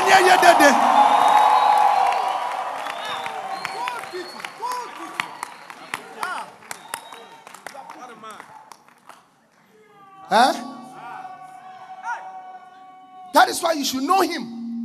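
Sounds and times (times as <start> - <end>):
large crowd shouting and whooping: 0.0 - 5.4, 9.9 - 13.6
large crowd clapping: 0.0 - 9.7
speech: 0.1 - 1.0, 10.3 - 10.6, 13.6 - 14.6.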